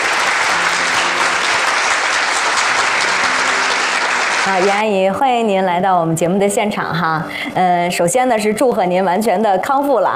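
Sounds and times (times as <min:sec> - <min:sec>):
audience applause welcoming a guest onstage at a TV program recording: 0:00.0 - 0:04.9
speech: 0:04.5 - 0:10.1.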